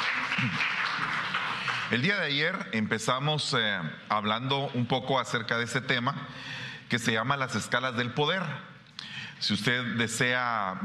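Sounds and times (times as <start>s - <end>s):
crowd applauding after a prayer: 0.0s - 2.2s
speech: 0.4s - 0.7s, 1.9s - 8.7s, 9.4s - 10.8s.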